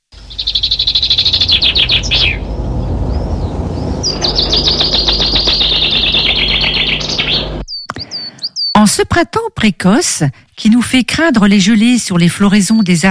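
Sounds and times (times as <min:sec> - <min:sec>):
low rumble: 0:00.0 - 0:07.7
great tit singing a rhythmic cadenced song: 0:00.2 - 0:09.0
speech: 0:09.0 - 0:13.0.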